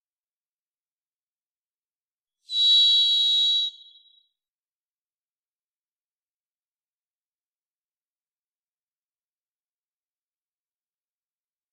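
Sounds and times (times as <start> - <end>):
varied thrush Ixoreus naevius singing a sustained burry whistle in Washington: 2.5 - 4.4.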